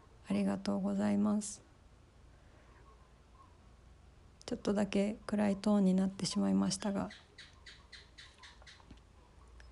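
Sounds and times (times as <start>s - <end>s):
quiet nighttime hum: 0.0s - 9.7s
speech: 0.3s - 1.7s, 4.5s - 7.5s
gecko chirping in sharp clicks: 7.1s - 9.0s.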